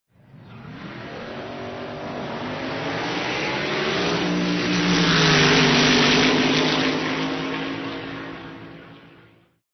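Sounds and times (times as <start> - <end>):
auto race cars: 0.1 - 9.6.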